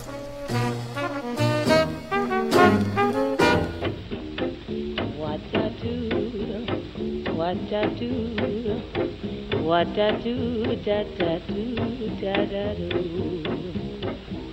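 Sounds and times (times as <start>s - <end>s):
faint record surface crackle: 0.0s - 4.1s
jazz big band music: 0.0s - 14.5s
speech: 7.5s - 13.8s.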